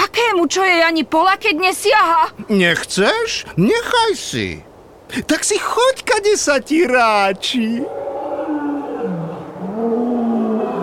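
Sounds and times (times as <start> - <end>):
speech: 0.4 - 8.1
lions roaring: 7.8 - 10.8.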